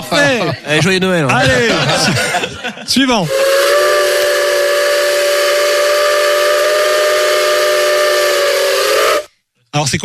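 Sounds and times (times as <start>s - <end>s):
laughter: 0.0s - 3.1s
speech: 0.1s - 3.6s, 9.8s - 10.0s
steam locomotive whistle blowing: 3.3s - 9.3s.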